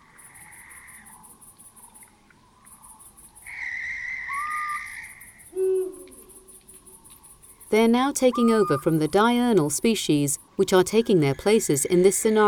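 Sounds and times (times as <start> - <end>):
owl hooting in a leafless park forest on a frosty night: 0.0 - 1.4, 2.8 - 9.5
chorus of crickets and insects chirping in a night forest: 0.0 - 12.4
speech: 7.7 - 12.4.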